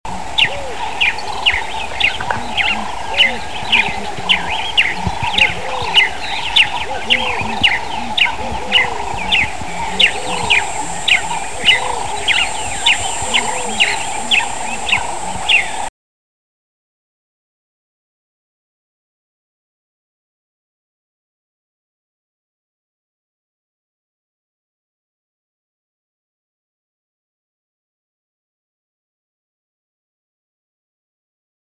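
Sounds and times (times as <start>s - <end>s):
Swahili sparrow calling: 0.1s - 15.9s.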